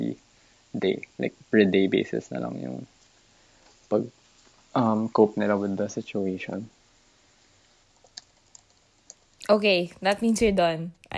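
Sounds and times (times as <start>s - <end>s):
quiet hissy background: 0.0s - 11.1s
speech: 0.1s - 2.9s, 3.9s - 6.8s, 9.5s - 11.1s
soft keystrokes on a computer keyboard: 8.0s - 9.2s.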